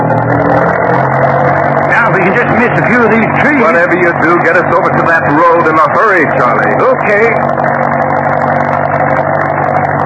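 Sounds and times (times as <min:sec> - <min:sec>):
jeep engine running while driving: 0:00.0 - 0:10.0
speech: 0:03.8 - 0:07.6.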